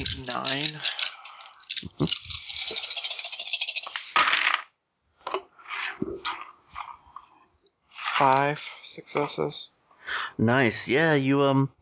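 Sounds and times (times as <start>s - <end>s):
handful of dice rattling as they are shaken: 0.0s - 4.8s
speech: 8.2s - 11.8s.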